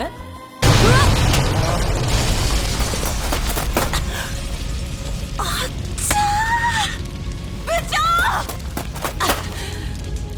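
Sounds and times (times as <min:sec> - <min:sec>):
fireworks rigged on a car tire bursting with a loud bang: 0:00.6 - 0:04.8
dense crackling string of sharp firecracker pops and booms: 0:00.6 - 0:10.3.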